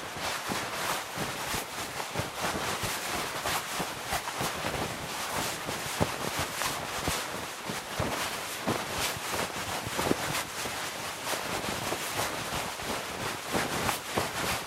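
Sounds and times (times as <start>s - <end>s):
clothing rustling while running: 0.0s - 14.6s.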